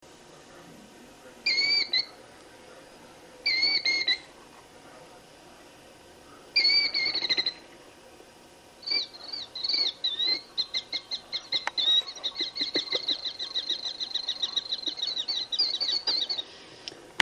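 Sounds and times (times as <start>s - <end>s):
killdeer calling: 1.5s - 2.1s, 3.4s - 4.3s, 6.6s - 7.7s, 8.8s - 16.4s.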